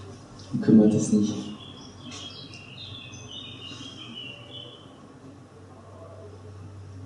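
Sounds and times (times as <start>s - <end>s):
birds chirping: 0.3s - 5.1s
speech: 0.5s - 1.5s.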